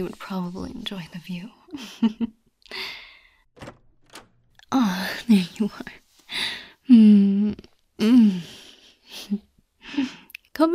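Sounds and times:
speech: 0:00.0 - 0:02.9, 0:04.9 - 0:08.6, 0:09.2 - 0:09.5
door latch knocking thunks: 0:03.6 - 0:04.8.

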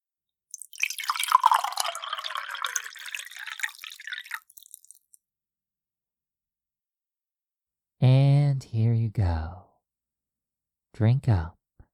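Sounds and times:
water pouring into a cup: 0:00.5 - 0:05.2
speech: 0:09.1 - 0:09.7, 0:11.0 - 0:11.6.

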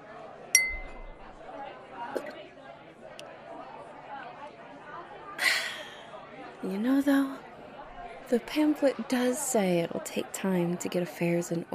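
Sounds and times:
low murmur of crowd chatter: 0:00.0 - 0:11.7
glasses clinking in a toast: 0:00.6 - 0:01.4
speech: 0:02.1 - 0:02.4, 0:06.6 - 0:07.4, 0:08.3 - 0:11.7.

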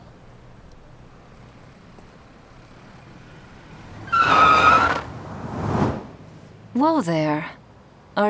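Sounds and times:
car engine rumbling: 0:00.0 - 0:08.2
car tires screeching: 0:01.2 - 0:06.8
speech: 0:06.8 - 0:07.6.

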